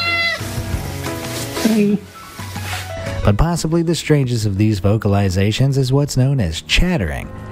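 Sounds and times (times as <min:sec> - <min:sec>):
cat meowing in a long drawn-out call: 0:00.0 - 0:00.6
speech: 0:01.7 - 0:02.2, 0:03.2 - 0:07.5.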